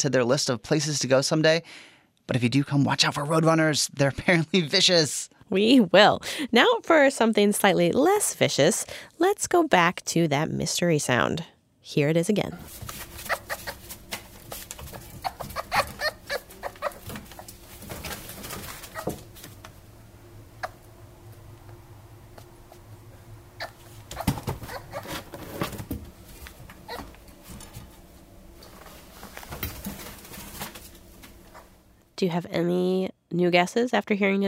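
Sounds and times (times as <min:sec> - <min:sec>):
speech: 0:00.0 - 0:13.1, 0:32.3 - 0:34.4
low hum: 0:00.0 - 0:34.4
fox calling: 0:12.5 - 0:13.8, 0:14.9 - 0:17.5, 0:23.6 - 0:25.2.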